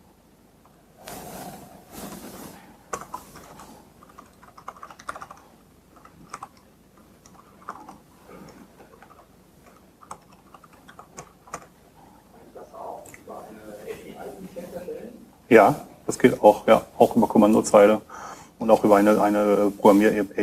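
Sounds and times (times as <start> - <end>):
keys clattering on a computer keyboard as a URL is typed: 2.9 - 11.8
speech: 12.5 - 18.0, 18.6 - 20.4.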